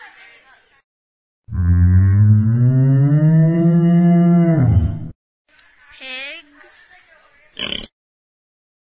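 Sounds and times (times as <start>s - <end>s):
cow mooing in the farmland of the Central Valley: 1.5s - 5.1s.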